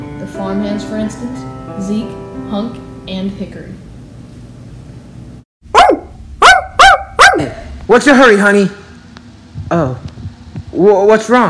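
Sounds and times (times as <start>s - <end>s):
speech: 0.2s - 3.9s, 7.4s - 8.8s, 9.7s - 10.0s, 10.8s - 11.4s
dog barking: 5.7s - 7.6s.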